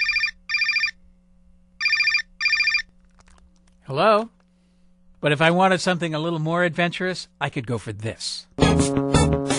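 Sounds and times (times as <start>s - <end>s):
standard cell phone ringtone ringing: 0.0s - 1.0s, 1.8s - 2.9s
speech: 3.9s - 4.4s, 5.2s - 9.4s.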